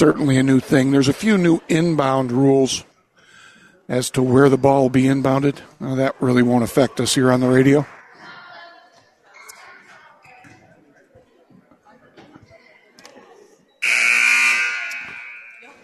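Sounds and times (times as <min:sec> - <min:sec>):
speech: 0:00.0 - 0:02.9, 0:03.9 - 0:08.0
murmuring crowd: 0:00.0 - 0:15.8
loud harsh arena game buzzer blaring: 0:13.8 - 0:15.8.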